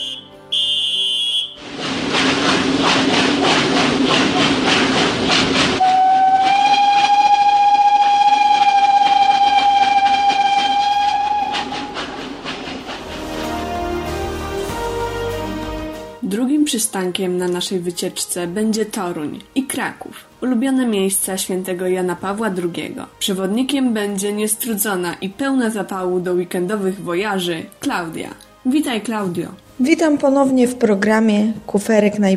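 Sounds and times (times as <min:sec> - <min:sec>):
train whistle blast: 0:00.0 - 0:01.7, 0:05.8 - 0:12.2
train pulling away from Kalisz railway station in Poland: 0:01.1 - 0:15.0
train wheels clattering: 0:01.6 - 0:13.6
speech: 0:16.9 - 0:32.3.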